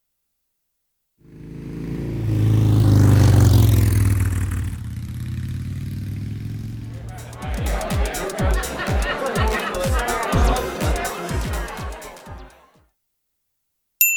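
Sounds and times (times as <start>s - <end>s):
motorbike engine starting, revving and riding off: 1.2s - 9.3s
laughter: 6.8s - 12.7s.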